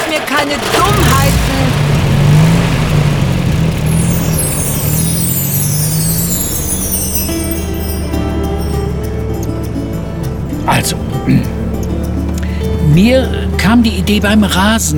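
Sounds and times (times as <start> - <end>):
old pickup truck engine pulling away from a yard: 0.0 - 14.9
speech: 0.1 - 1.8, 10.7 - 11.6, 12.9 - 14.9
high whine: 3.0 - 9.4.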